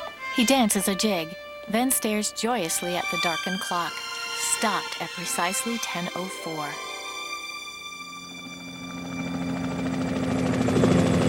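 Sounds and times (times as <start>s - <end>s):
speech: 0.4s - 6.9s
helicopter hovering over a tower roof: 4.4s - 11.2s.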